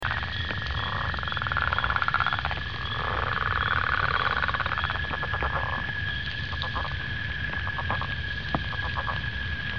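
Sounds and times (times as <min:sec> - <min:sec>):
Lithobates pipiens frog: 0:00.0 - 0:09.7.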